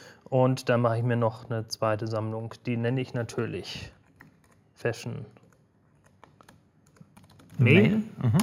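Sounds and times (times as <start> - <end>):
speech: 0.3 - 4.0, 4.8 - 5.4, 7.6 - 8.4
fingers typing on a computer keyboard: 4.0 - 4.7, 5.3 - 7.6.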